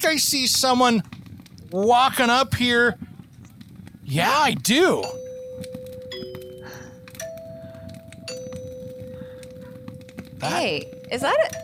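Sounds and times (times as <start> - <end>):
speech: 0.0 - 3.0, 4.1 - 5.2, 10.4 - 11.6
doorbell chiming an electronic melody: 5.0 - 11.6.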